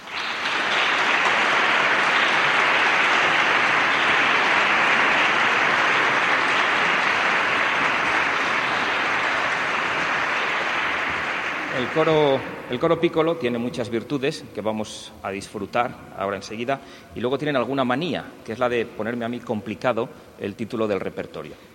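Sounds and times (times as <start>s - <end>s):
large audience applause welcoming a choir: 0.0s - 13.0s
speech: 11.8s - 21.7s.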